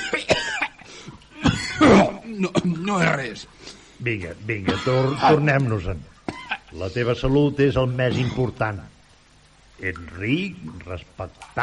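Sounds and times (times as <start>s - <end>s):
person coughing: 0.0s - 0.8s, 1.4s - 2.2s, 4.6s - 5.4s, 6.3s - 6.7s, 8.1s - 8.6s
speech: 2.3s - 6.1s, 6.7s - 8.9s, 9.8s - 11.6s.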